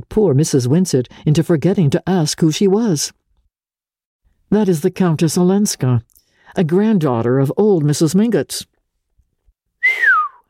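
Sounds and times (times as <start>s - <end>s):
speech: 0.0s - 3.2s, 4.5s - 8.7s
person whistling: 9.8s - 10.4s.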